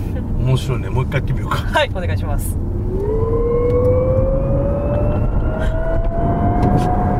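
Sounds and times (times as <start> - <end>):
low road and motor rumble: 0.0 - 7.1
speech: 0.5 - 3.4
electric car Active Sound Control synthetic whine while accelerating: 2.6 - 7.1.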